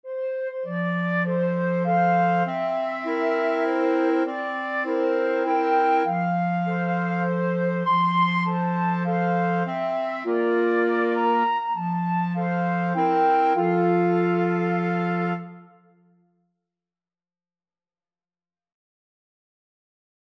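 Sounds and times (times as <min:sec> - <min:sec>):
wind quartet playing: 0:00.1 - 0:15.6.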